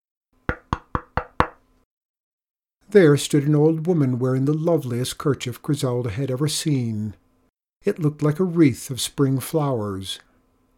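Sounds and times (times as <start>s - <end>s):
sharp knocks on a wooden door at night: 0.5s - 1.6s
speech: 2.9s - 7.2s, 7.8s - 10.3s.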